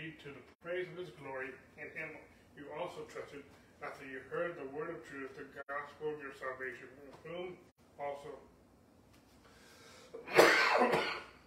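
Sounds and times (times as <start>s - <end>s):
speech: 0.2s - 8.6s
throat-clearing cough of a person reading scripture aloud: 10.2s - 11.4s.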